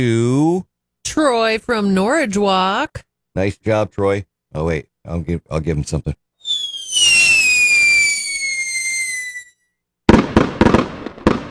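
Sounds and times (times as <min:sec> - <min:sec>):
speech: 0:00.0 - 0:06.2
consumer firework whistling rocket: 0:06.4 - 0:09.7
consumer fireworks crackling bangs: 0:06.5 - 0:09.4, 0:10.1 - 0:11.4.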